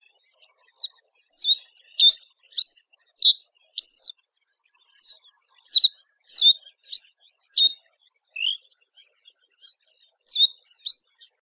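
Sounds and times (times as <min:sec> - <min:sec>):
reed bunting: 0:00.8 - 0:04.1, 0:05.0 - 0:08.6, 0:09.6 - 0:11.1.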